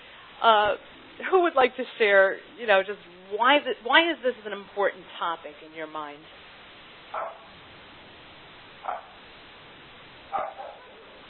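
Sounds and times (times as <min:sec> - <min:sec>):
steady hiss: 0:00.0 - 0:11.2
speech: 0:00.4 - 0:06.4, 0:07.1 - 0:07.4
dog barking during a group call: 0:07.1 - 0:07.5, 0:08.8 - 0:09.2, 0:10.3 - 0:11.2.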